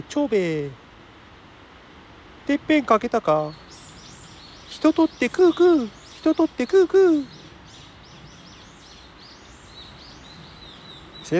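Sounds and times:
speech: 0.0 - 0.8, 2.5 - 3.7, 4.7 - 7.4
outdoor hiss: 0.0 - 11.3
wild birds chirping and whistling on a mountain: 3.4 - 11.3.

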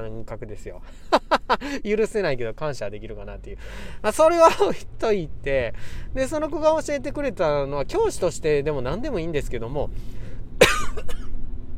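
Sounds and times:
steady low hum: 0.0 - 11.7
speech: 0.2 - 10.2
laughter: 1.0 - 1.8
person coughing: 10.6 - 11.3
throat clearing: 10.6 - 11.3.

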